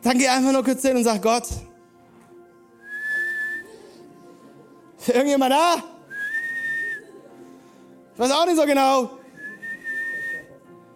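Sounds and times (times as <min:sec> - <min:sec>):
speech: 0:00.0 - 0:01.7, 0:05.0 - 0:05.9, 0:08.2 - 0:09.2
person whistling a clear steady high note: 0:02.8 - 0:03.7, 0:06.1 - 0:07.0, 0:09.3 - 0:10.6.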